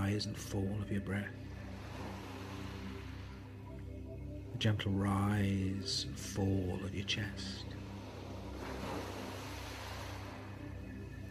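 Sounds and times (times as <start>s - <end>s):
gentle music: 0.0s - 11.2s
speech: 0.1s - 1.5s, 4.6s - 7.8s
surf washing on a shore: 1.5s - 3.8s, 7.3s - 11.1s.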